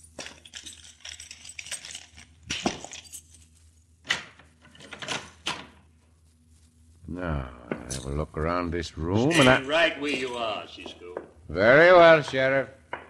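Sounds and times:
metallic jingling and clinking of keys: 0.0 - 3.6
speech: 7.1 - 12.8.

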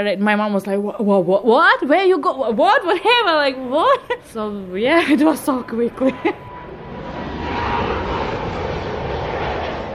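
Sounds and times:
speech: 0.0 - 6.5
airplane engines roaring during landing: 2.2 - 9.9.

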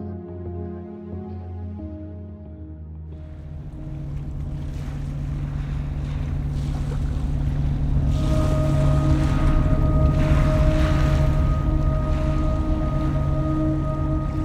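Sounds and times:
boat hull skimming across water: 3.2 - 14.3
boat motor droning: 3.2 - 14.3
wind: 3.2 - 14.3.

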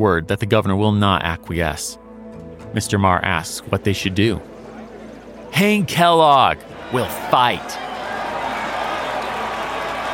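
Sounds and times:
speech: 0.0 - 2.0, 2.7 - 4.6, 5.5 - 7.8
large crowd roaring and shouting: 6.0 - 10.1.

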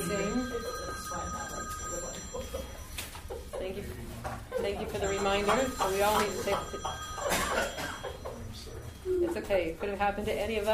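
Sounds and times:
cell phone ringing: 0.0 - 3.8, 4.6 - 9.2
speech: 4.9 - 7.0, 9.2 - 10.7.

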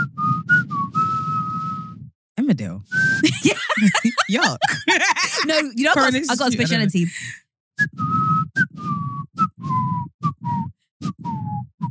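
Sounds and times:
person whistling a tune: 0.0 - 2.1, 2.9 - 4.0, 7.8 - 11.8
speech: 2.5 - 8.0
laughter: 3.2 - 7.4.

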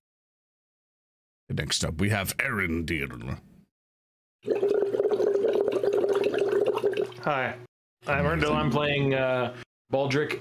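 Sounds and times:
speech: 1.6 - 3.5, 7.3 - 10.4
bubbles blown through a straw into a drink: 4.4 - 7.2.

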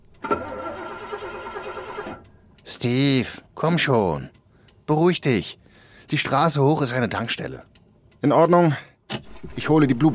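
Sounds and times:
car starter cranking without the engine catching: 0.0 - 2.4, 9.1 - 10.1
speech: 2.8 - 10.1.

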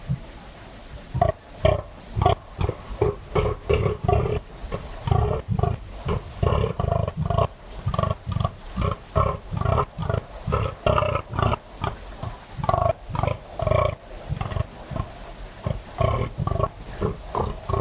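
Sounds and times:
fallow deer buck rutting groans on a dark Dorset night: 1.2 - 17.8.

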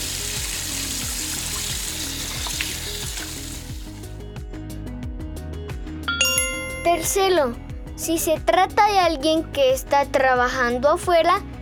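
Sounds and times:
water running from a tap while washing hands: 0.0 - 4.0
light musical backing: 0.1 - 11.5
bright chime: 6.1 - 7.6
speech: 6.8 - 11.5.

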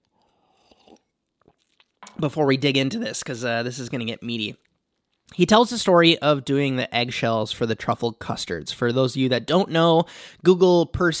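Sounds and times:
person sipping coffee: 0.0 - 2.2
slurping and swallowing mouth noises: 0.0 - 2.2
speech: 2.2 - 4.7, 5.4 - 11.1.

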